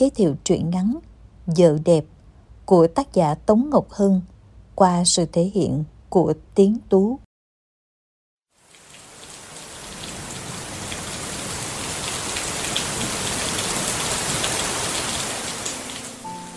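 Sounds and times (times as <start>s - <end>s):
speech: 0.0s - 7.3s
steady rain drumming on surfaces: 8.5s - 16.5s.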